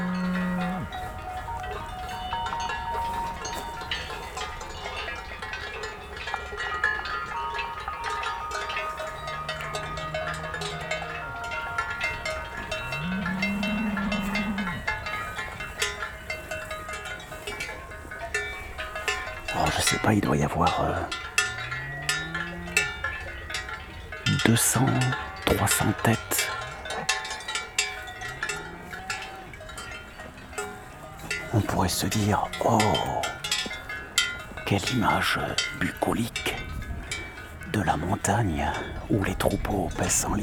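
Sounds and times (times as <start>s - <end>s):
Gascon cows mooing low: 0.0s - 5.2s, 6.3s - 18.3s, 20.6s - 35.7s
many cowbells clanking on a moving herd of Gascon cows: 0.0s - 40.4s
speech: 20.1s - 21.2s, 24.4s - 26.3s, 31.6s - 33.4s, 34.7s - 36.4s, 37.8s - 40.4s.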